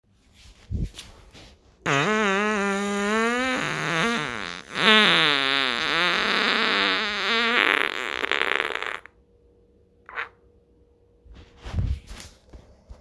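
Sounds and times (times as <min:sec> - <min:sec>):
thunderous fart: 0:01.9 - 0:09.1, 0:10.1 - 0:10.4.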